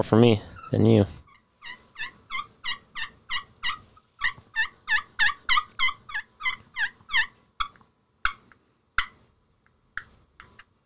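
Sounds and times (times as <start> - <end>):
speech: 0.0 - 1.2
sharp scratches of slate turkey call: 0.0 - 9.2
broken slate turkey call yelping: 0.5 - 8.4.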